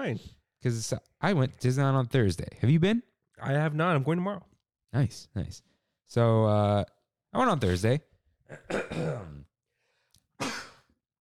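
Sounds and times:
speech: 0.0 - 9.4
person sneezing: 8.5 - 9.4, 10.4 - 10.9.

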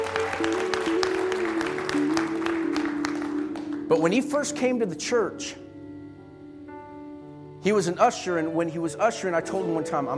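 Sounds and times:
church audience clapping: 0.0 - 4.3
sustained organ or keyboard chords: 0.0 - 10.1
speech: 3.9 - 5.6, 7.6 - 10.1.

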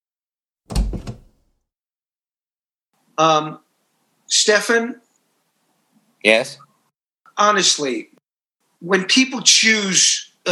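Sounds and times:
mechanical switch being flicked on a door: 0.7 - 1.4
speech: 3.2 - 3.6, 4.3 - 5.0, 6.2 - 6.7, 7.4 - 8.1, 8.8 - 10.3.

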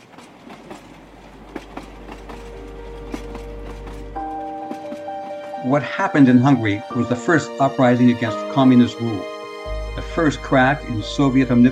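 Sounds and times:
rhythmic clickety-clack of train wheels: 0.0 - 6.6
train carriages rolling on rails: 0.0 - 11.7
speech: 5.6 - 9.3, 10.2 - 11.7.

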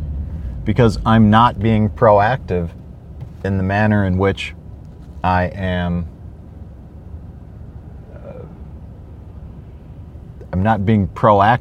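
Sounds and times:
traffic rumble heard from inside car: 0.0 - 11.5
speech: 0.7 - 2.8, 3.4 - 4.6, 5.2 - 6.1, 10.5 - 11.5.

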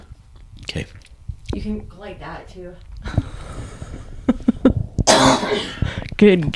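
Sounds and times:
speech: 0.7 - 3.3, 5.4 - 6.5
man coughing: 5.0 - 5.8.

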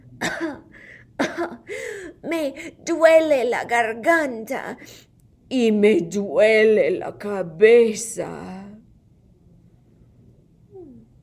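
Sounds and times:
girl faking coughs: 0.2 - 1.7
speech: 2.3 - 8.6.

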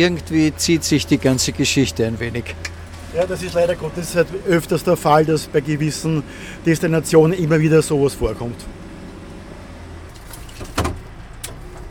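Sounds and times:
speech: 0.0 - 8.8
low steady hum: 0.0 - 11.8
car door thudding shut as the driver climbs out: 10.5 - 11.1.

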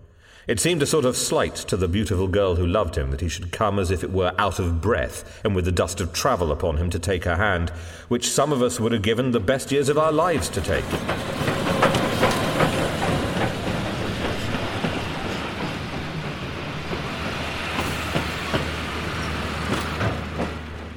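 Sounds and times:
speech: 0.4 - 11.7
train rolling along rails through a station: 8.8 - 20.9
train wheels clicking over track joints: 10.0 - 20.9.

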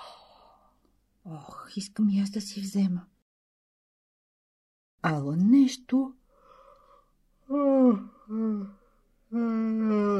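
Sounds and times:
speech: 1.3 - 3.1, 5.0 - 6.2, 7.5 - 10.1
person yawning: 7.5 - 10.1.

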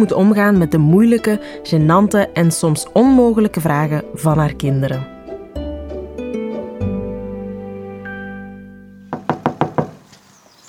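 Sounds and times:
speech: 0.0 - 5.1
quick sharp knocks on a door: 9.1 - 10.0.

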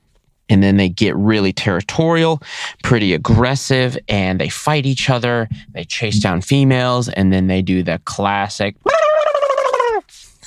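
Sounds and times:
speech: 0.5 - 9.0, 10.1 - 10.4
person imitating a wild turkey gobble: 8.8 - 10.4.

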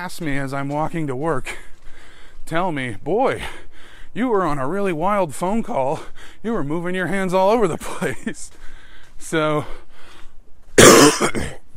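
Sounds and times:
speech: 0.0 - 1.7, 2.5 - 9.8, 11.0 - 11.6
person coughing: 10.8 - 11.6.

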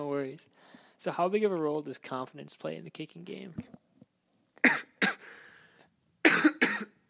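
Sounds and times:
speech: 0.3 - 3.8
person coughing with raspy wheezing trail: 4.6 - 5.4, 6.2 - 7.0.

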